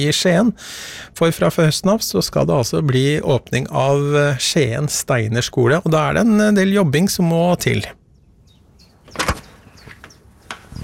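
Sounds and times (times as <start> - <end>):
speech: 0.0 - 8.0
school door opening with a solid clunk: 9.0 - 10.7.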